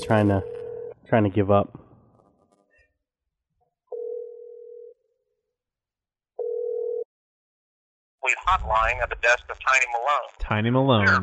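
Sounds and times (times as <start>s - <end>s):
telephone ringback tones on a call ringing through to voicemail: 0.0s - 0.9s, 3.9s - 5.0s
speech: 0.1s - 0.5s, 1.1s - 1.8s, 8.4s - 11.2s.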